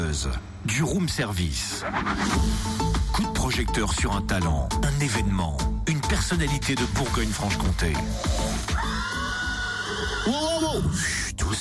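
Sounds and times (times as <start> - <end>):
speech: 0.1 - 8.8, 10.0 - 11.5
horse whinnying: 8.5 - 11.0.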